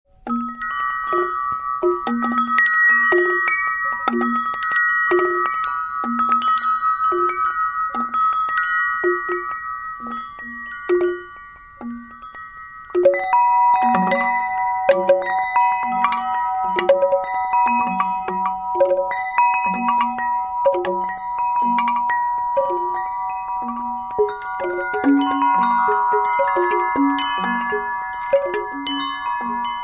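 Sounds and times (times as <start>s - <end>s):
chord chimes: 0.2s - 29.8s.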